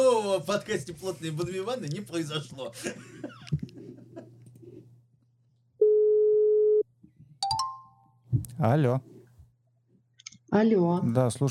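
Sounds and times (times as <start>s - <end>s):
speech: 0.4s - 3.6s, 8.6s - 9.1s, 10.5s - 11.5s
laughter: 2.3s - 4.4s
telephone busy signal after a call drops: 5.8s - 6.8s.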